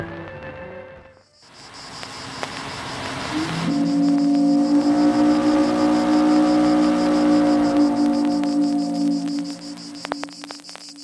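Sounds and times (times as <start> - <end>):
constant high chirring hiss: 1.1 - 11.0
boat passing with a deep droning tone: 2.6 - 10.3.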